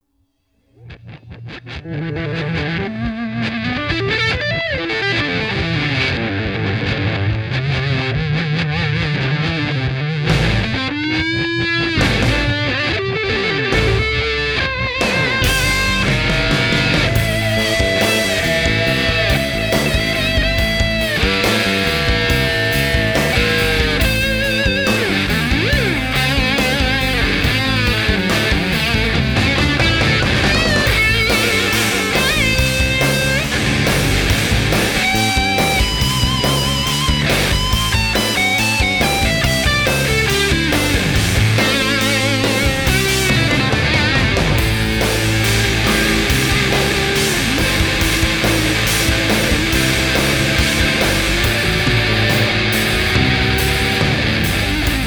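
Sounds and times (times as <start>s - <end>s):
classic fuzz guitar tone: 0.8s - 55.0s.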